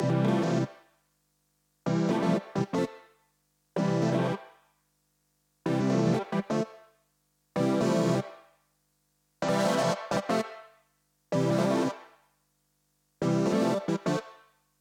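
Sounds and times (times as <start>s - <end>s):
synthesizer: 0.0s - 0.9s, 1.8s - 3.2s, 3.8s - 4.6s, 5.6s - 7.0s, 7.6s - 8.6s, 9.4s - 12.2s, 13.2s - 14.6s.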